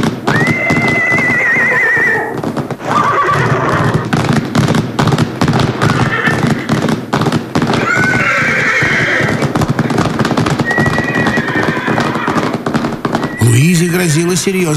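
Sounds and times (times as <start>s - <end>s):
herd of wild horses galloping: 0.0s - 14.7s
speech: 14.0s - 14.7s.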